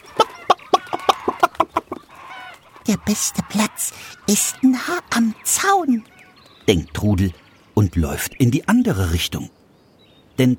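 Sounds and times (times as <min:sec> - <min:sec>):
chickens clucking as they crowd together to get outside: 0:00.0 - 0:09.2
speech: 0:02.9 - 0:06.1, 0:06.7 - 0:09.6, 0:10.4 - 0:10.5.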